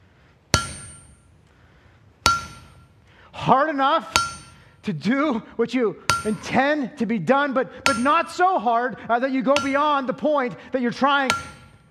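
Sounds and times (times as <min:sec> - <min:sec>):
hammer blows on hot metal being forged: 0:00.5 - 0:01.4, 0:02.2 - 0:02.9, 0:04.1 - 0:04.8, 0:06.1 - 0:06.6, 0:07.8 - 0:08.4, 0:09.5 - 0:10.2, 0:11.2 - 0:11.8
speech: 0:03.3 - 0:04.2, 0:04.8 - 0:11.6.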